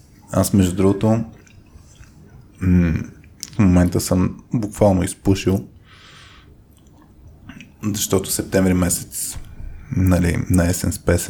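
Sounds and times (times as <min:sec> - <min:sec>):
speech: 0:00.3 - 0:01.4, 0:02.6 - 0:05.7, 0:07.8 - 0:11.2
someone chewing food with mouth noises: 0:01.2 - 0:03.6, 0:06.7 - 0:07.8
lip smacks: 0:01.3 - 0:03.6, 0:06.7 - 0:07.8.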